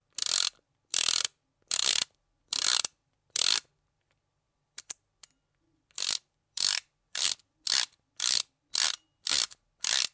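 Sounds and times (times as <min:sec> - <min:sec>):
ratchet clicking: 0:00.2 - 0:03.6, 0:06.0 - 0:10.1.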